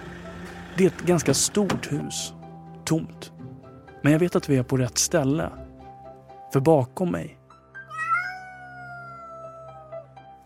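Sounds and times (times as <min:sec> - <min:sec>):
speech: 0:00.8 - 0:03.3, 0:04.0 - 0:05.6, 0:06.5 - 0:07.4
cats meowing in a fairly large empty house: 0:07.8 - 0:10.1.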